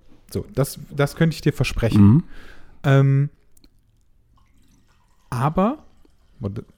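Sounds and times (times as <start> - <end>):
small drips and splashes of coffee: 0.0 - 6.7
speech: 0.3 - 3.4, 5.3 - 5.8, 6.4 - 6.7
coffee trickling into a cup: 3.5 - 6.7.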